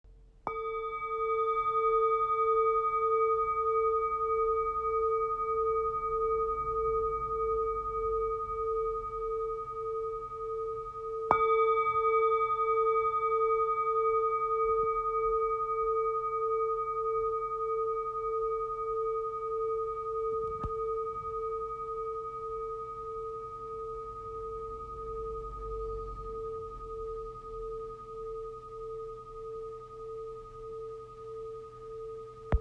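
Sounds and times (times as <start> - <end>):
13 cm singing bowl: 0.1 - 32.5.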